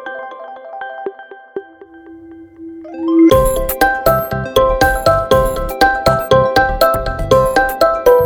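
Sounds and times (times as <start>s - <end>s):
phone ringtone: 0.8s - 8.2s.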